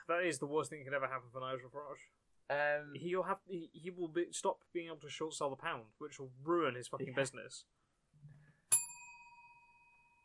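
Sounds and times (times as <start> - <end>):
speech: 0.1 - 7.8
bright bell strike: 8.7 - 10.2.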